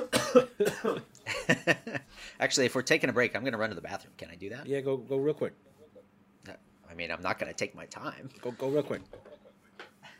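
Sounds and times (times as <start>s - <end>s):
harsh coughs: 0.0s - 1.1s
speech: 0.4s - 5.7s, 6.4s - 9.3s.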